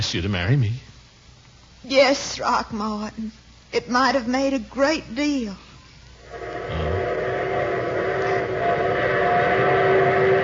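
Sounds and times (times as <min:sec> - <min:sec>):
speech: 0:00.0 - 0:00.9, 0:01.8 - 0:05.6
arriving train wheels and machinery rumbling: 0:06.3 - 0:10.4.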